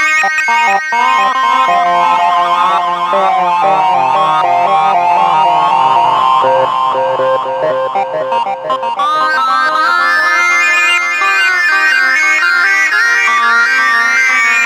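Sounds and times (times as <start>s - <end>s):
sync synth lead: 0.2s - 14.5s.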